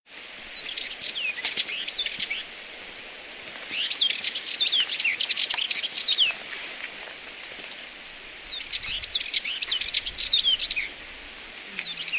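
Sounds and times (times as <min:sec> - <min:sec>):
Sardinian warbler: 0:00.4 - 0:02.6, 0:03.7 - 0:06.6, 0:08.3 - 0:10.9, 0:11.6 - 0:12.1.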